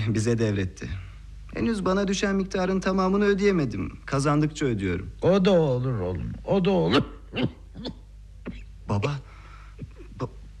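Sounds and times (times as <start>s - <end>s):
speech: 0.0s - 1.0s, 1.6s - 8.0s, 8.9s - 9.3s
faint low hum: 0.0s - 10.5s
sick father coughing: 6.9s - 8.7s.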